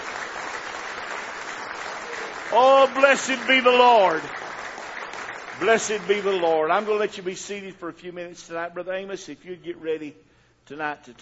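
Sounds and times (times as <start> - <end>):
church congregation clapping in praise: 0.0 - 7.8
speech: 2.5 - 4.4, 5.6 - 11.2.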